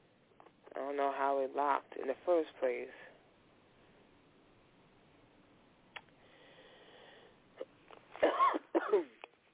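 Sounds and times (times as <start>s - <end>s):
speech: 0.9s - 3.1s
soft breath: 6.2s - 7.5s
harsh coughs: 8.2s - 9.2s.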